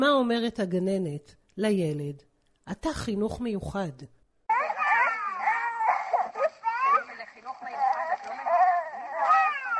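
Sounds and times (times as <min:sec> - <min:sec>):
speech: 0:00.0 - 0:04.2
young children crying and wailing: 0:04.5 - 0:09.7.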